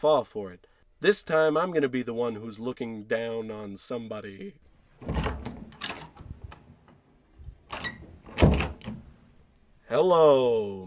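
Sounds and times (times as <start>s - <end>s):
speech: 0.0s - 5.3s, 9.9s - 10.8s
front door opening and shutting as someone enters the house: 4.9s - 9.4s.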